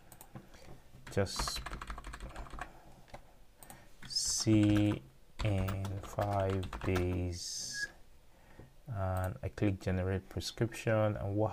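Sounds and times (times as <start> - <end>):
soft keyboard typing of a phone number: 1.0 - 7.2
speech: 1.2 - 1.7, 4.4 - 7.7, 8.9 - 11.5.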